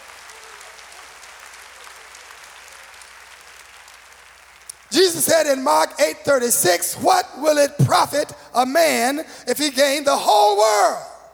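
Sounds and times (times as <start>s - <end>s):
audience clapping hands to praise God: 0.0s - 8.2s
speech: 4.9s - 11.1s.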